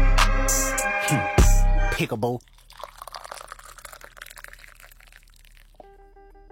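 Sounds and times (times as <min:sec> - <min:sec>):
speech: 0:00.5 - 0:01.3, 0:02.0 - 0:02.6
tea pouring into a cup: 0:02.0 - 0:05.9.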